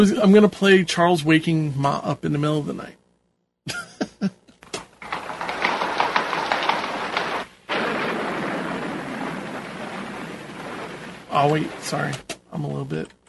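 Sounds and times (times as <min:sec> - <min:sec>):
speech: 0:00.0 - 0:03.0, 0:03.7 - 0:04.4, 0:11.4 - 0:13.2
heavy rain pouring down: 0:05.0 - 0:12.2
sharp knocks: 0:05.0 - 0:12.3
broad loud rumble of thunder: 0:05.1 - 0:12.2.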